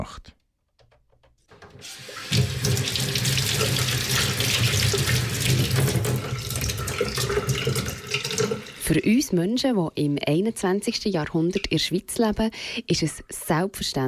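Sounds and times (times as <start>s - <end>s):
speech: 0.0s - 0.4s, 1.8s - 3.2s, 8.9s - 14.0s
water gushing from an opened tap into a sink: 1.5s - 9.0s.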